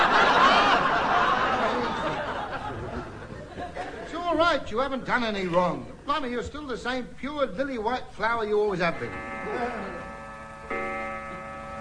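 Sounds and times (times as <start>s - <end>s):
laughter: 0.0s - 4.2s
speech: 4.5s - 10.0s
clock chiming bell-like tones striking twelve: 8.9s - 11.7s.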